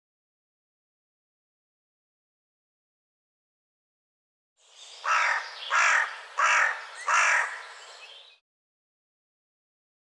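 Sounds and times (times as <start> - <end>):
bird calling with rough raspy caws: 5.0 - 7.8.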